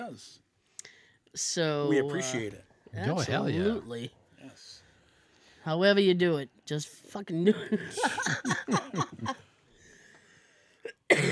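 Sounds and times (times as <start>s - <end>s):
faint noise: 0.0s - 11.3s
speech: 0.1s - 0.5s, 1.3s - 4.8s, 5.6s - 9.5s
laughter: 7.6s - 9.4s
person coughing harshly: 7.9s - 9.3s, 10.9s - 11.3s.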